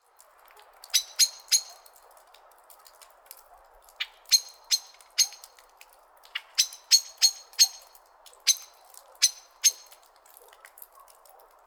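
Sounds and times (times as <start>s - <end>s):
common blackbird Turdus merula metallic chink calls: 0.9s - 1.8s, 4.0s - 5.5s, 6.4s - 7.9s, 8.5s - 10.0s.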